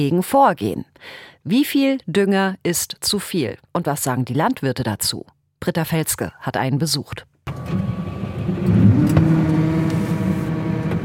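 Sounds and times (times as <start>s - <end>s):
speech: 0.0s - 9.2s
tractor engine droning while driving in a winter wheat field: 7.5s - 11.0s.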